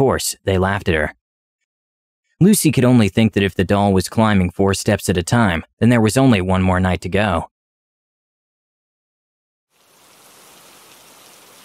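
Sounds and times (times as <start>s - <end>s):
speech: 0.0s - 1.2s, 2.4s - 7.5s
heavy rain at night: 9.8s - 11.6s.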